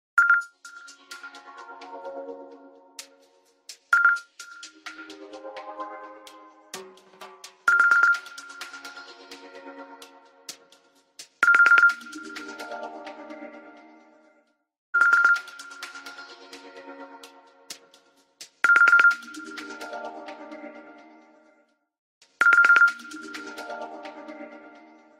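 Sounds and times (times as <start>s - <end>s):
Nokia clock alert ringtone: 0.2s - 1.0s, 3.9s - 4.7s, 7.7s - 8.6s, 11.4s - 12.2s, 15.0s - 15.8s, 18.6s - 19.5s, 22.4s - 23.3s.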